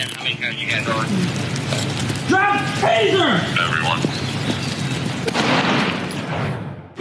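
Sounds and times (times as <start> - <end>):
voices during a tense scuffle: 0.0 - 5.2
rustling during a tense scuffle: 0.0 - 6.3
speech: 0.3 - 4.0
single sharp gunshot from a firearm: 5.2 - 6.9.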